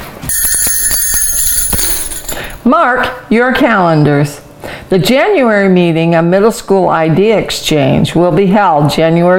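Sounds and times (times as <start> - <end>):
jingle bells shaken briskly as a topic-change cue: 0.3 - 2.6
speech: 2.6 - 9.3.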